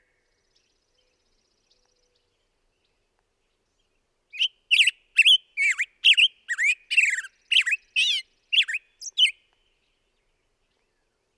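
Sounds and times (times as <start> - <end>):
black-headed grosbeak warbling whistled song: 4.4 - 9.3.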